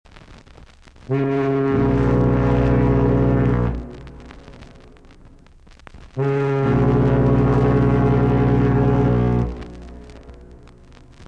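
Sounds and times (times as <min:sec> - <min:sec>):
boat: 0:01.2 - 0:04.1, 0:06.2 - 0:10.4.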